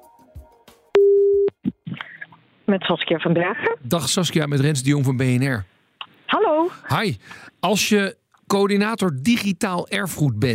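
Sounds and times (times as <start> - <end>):
telephone ringing tone while placing a call: 1.0 - 1.5
speech: 2.7 - 5.8, 6.7 - 10.5.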